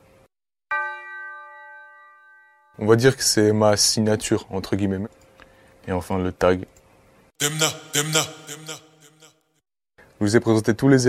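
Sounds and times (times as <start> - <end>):
clean bell sample in a boom bap beat: 0.7 - 2.9
speech: 2.8 - 5.2, 5.8 - 6.8, 7.4 - 8.8, 10.2 - 11.0.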